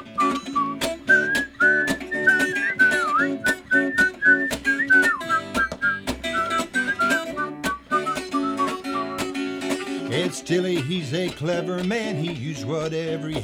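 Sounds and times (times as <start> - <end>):
group of kids whistling a bright melody: 0.0 - 9.3
strummed rhythmic musical accompaniment: 0.0 - 13.4
speech: 10.5 - 13.4.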